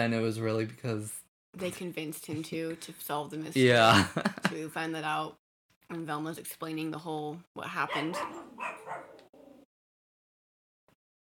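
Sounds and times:
speech: 0.0s - 9.2s
laughter: 3.8s - 4.6s
dogs barking yappy barks: 7.9s - 9.5s
faint brief yip: 7.9s - 9.6s.

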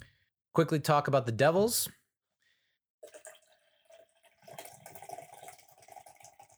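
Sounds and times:
speech: 0.6s - 2.0s
big drink pouring into a glass: 3.0s - 6.5s.

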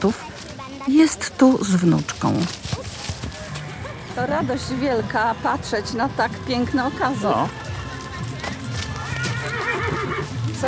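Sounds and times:
speech: 0.0s - 2.7s, 4.2s - 7.6s
faint talk: 0.0s - 10.6s
horse hooves clip-clopping in an arena: 0.0s - 10.6s
horses whinnying while warming up in an arena: 2.4s - 10.6s.

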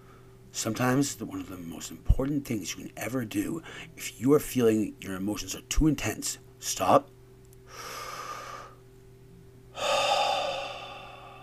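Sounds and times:
speech: 0.6s - 7.9s
deep breath in and slow breath out: 7.7s - 8.8s, 9.7s - 11.4s.

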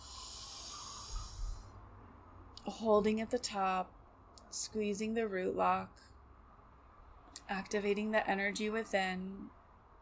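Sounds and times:
deep inhale during a yoga breathing exercise: 0.0s - 1.8s
speech: 2.6s - 6.1s, 7.5s - 9.6s.

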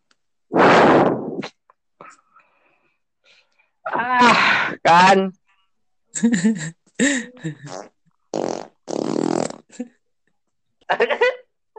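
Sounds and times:
loud raspy fart blasts: 0.5s - 1.6s, 7.7s - 9.7s
speech: 3.9s - 5.4s, 6.2s - 7.9s, 9.7s - 10.0s, 10.9s - 11.4s.

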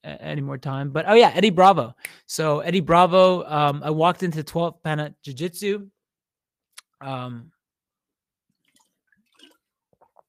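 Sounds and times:
speech: 0.0s - 6.0s, 7.0s - 7.6s
quiet sip of water: 8.6s - 10.2s.

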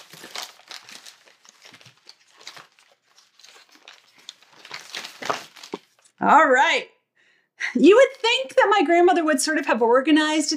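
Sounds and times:
paper crinkling as bottles are unwrapped from a bin: 0.0s - 6.1s
speech: 6.2s - 7.0s, 7.8s - 10.5s.

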